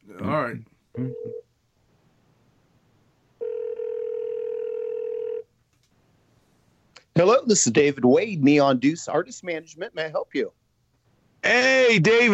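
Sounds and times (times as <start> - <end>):
quiet hum: 0.0 - 12.3
speech: 0.4 - 1.4, 7.2 - 10.6, 11.4 - 12.3
telephone dial tone as a phone call is placed: 3.4 - 5.4.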